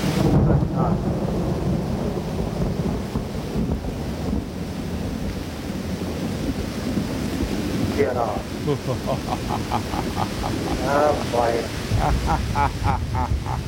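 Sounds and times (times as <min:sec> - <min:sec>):
deep thunder rumble: 0:00.0 - 0:13.6
heavy pouring rain: 0:00.0 - 0:13.6
speech: 0:08.2 - 0:13.6
laughter: 0:08.6 - 0:13.6.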